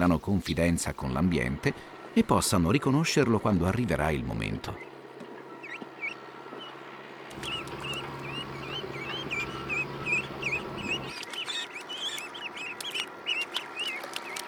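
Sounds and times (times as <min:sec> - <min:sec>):
speech: 0:00.0 - 0:04.9
steady outdoor hum: 0:00.0 - 0:14.4
young ducklings peeping in a flooded rice paddy: 0:05.6 - 0:14.4.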